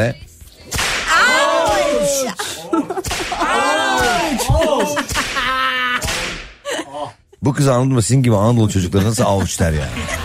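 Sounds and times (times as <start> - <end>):
speech: 0.0 - 0.2, 2.1 - 6.0, 7.0 - 10.2
whip cracking: 0.7 - 1.9, 3.0 - 6.6
strained wailing vocal sounds: 1.1 - 2.8, 3.4 - 6.1
laughter: 1.7 - 7.2, 8.7 - 10.2.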